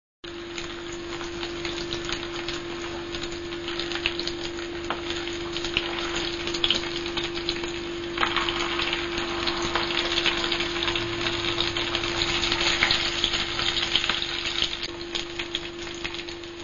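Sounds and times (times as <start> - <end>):
food frying in a kitchen: 0.2 - 16.6.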